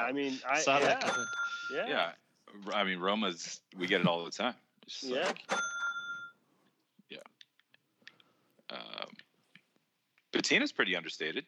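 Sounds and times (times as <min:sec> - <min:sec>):
speech: 0:00.0 - 0:05.7, 0:07.1 - 0:07.3, 0:10.3 - 0:11.4
single bright bell ringing: 0:00.9 - 0:01.9, 0:05.4 - 0:06.4.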